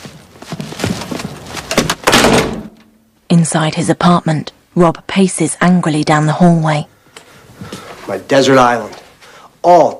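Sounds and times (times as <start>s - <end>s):
door closing with a scraping bang: 1.8s - 2.8s
speech: 3.3s - 6.9s, 7.6s - 9.0s, 9.6s - 9.9s.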